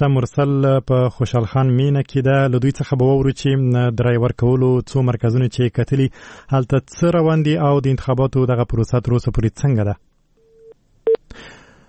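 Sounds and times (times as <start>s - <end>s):
speech: 0.0s - 10.1s
telephone tone on a call that gets cut off: 10.4s - 11.2s.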